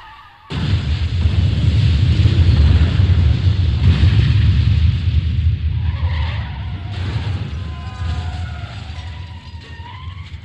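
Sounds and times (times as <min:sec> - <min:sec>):
car skidding and crashing into a tractor: 0:00.0 - 0:10.4
thin squealing tones: 0:08.0 - 0:10.4.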